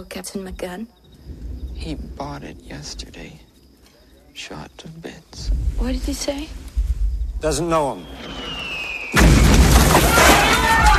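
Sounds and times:
speech: 0.0s - 3.5s, 4.4s - 6.6s, 7.4s - 8.7s
artillery shells exploding around a field tent: 7.9s - 10.9s.

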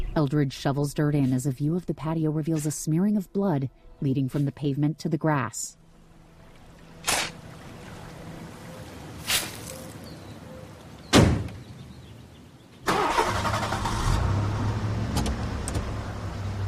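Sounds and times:
speech: 0.2s - 5.8s
sharp knocks: 11.1s - 11.6s
car engine starting up and running while backing out of a driveway: 12.9s - 16.6s.

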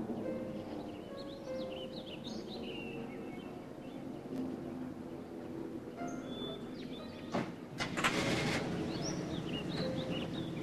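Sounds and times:
birds chirping faintly overhead: 0.0s - 10.6s
old car engine rumbling at low pitch while backing out: 7.8s - 10.6s.

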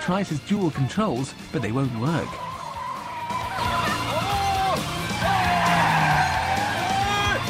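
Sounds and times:
speech: 0.1s - 2.5s
car tires squealing while floored in reverse: 3.3s - 7.4s.

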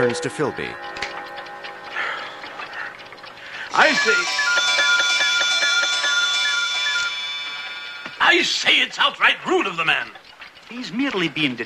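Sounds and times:
speech: 0.0s - 1.0s, 3.8s - 4.5s, 8.3s - 11.6s
many clocks striking eight around a room: 0.0s - 11.6s.

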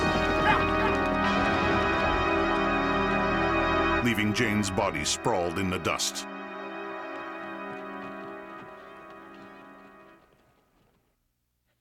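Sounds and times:
several horses walking off with hooves clip-clopping: 0.0s - 3.2s, 6.9s - 11.7s
speech: 4.0s - 6.3s.

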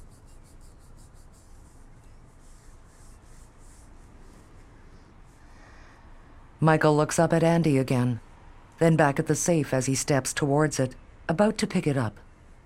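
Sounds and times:
hands nervously rubbing against knees: 0.0s - 4.7s
speech: 6.6s - 12.2s.

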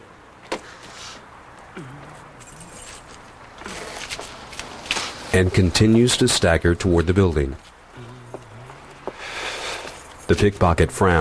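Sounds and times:
low hum: 0.0s - 11.2s
keys dropped and picked up, clinking and jingling: 1.9s - 4.6s, 9.6s - 10.6s
speech: 5.3s - 7.7s, 10.3s - 11.2s.

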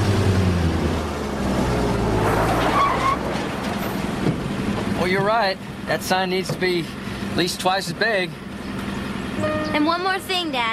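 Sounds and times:
gritty tire noise of a pickup truck on a sandy track: 0.0s - 9.4s
pickup truck engine rumble on a sandy track: 0.0s - 10.7s
speech: 5.1s - 8.4s, 9.7s - 10.7s.

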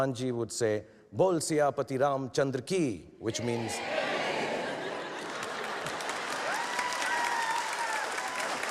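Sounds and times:
speech: 0.0s - 4.0s
audience laughing: 3.8s - 6.5s
audience applause: 4.2s - 8.6s
faint whoops from audience: 6.4s - 8.6s.

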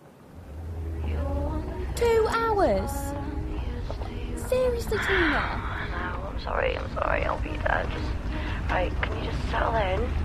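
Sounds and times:
car driving along a dirt path through a forest: 0.0s - 10.2s
faint tonal whine: 0.0s - 10.2s
speech: 2.6s - 3.1s, 4.7s - 5.6s, 6.4s - 10.2s.

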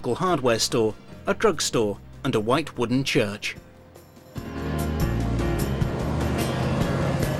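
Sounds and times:
speech: 0.0s - 3.7s
van and car passing along a street: 4.4s - 7.3s.

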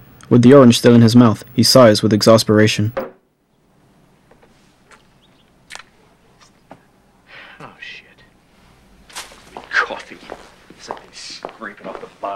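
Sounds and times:
speech: 0.3s - 3.1s
footsteps of several people strolling down a corridor on a hard floor: 9.1s - 12.3s.

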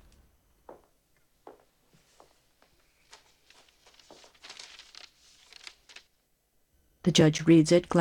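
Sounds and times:
faint shuffling: 0.0s - 6.1s
folded paper rustling and crinkling as it is handed over in a courtroom: 1.4s - 6.2s
speech: 7.1s - 7.9s.

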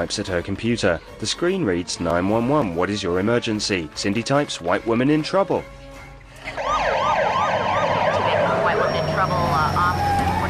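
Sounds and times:
speech: 0.0s - 5.8s
several police car sirens wailing as police cars pull up on a driveway: 6.5s - 10.4s.

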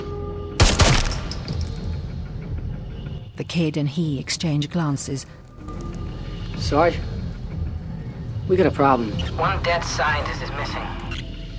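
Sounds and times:
film gunshots at a dig site: 0.6s - 1.4s
speech: 3.4s - 5.9s, 6.6s - 7.1s, 8.5s - 11.0s.

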